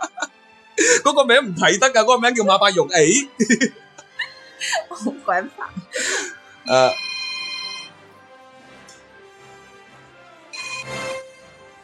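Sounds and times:
laughter: 0.0s - 6.9s
speech: 1.0s - 3.8s, 4.6s - 6.1s, 6.7s - 7.1s
telephone ringing with a bright electronic tone: 6.7s - 8.0s, 10.6s - 11.2s.

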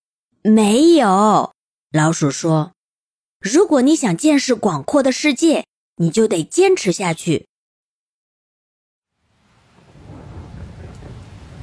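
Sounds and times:
speech: 0.4s - 2.8s, 3.4s - 7.5s
rain building into a heavy dense downpour: 9.2s - 11.6s
deep rumbling undertone: 9.7s - 11.6s.

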